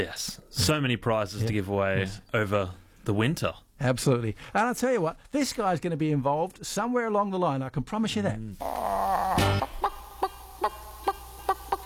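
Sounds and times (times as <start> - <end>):
speech: 0.0 - 9.8
rooster crowing: 8.6 - 11.8.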